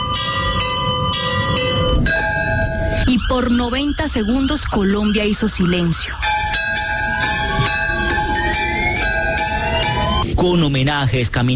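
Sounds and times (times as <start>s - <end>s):
church bells ringing: 0.0s - 10.2s
speech: 3.1s - 6.3s, 10.4s - 11.5s.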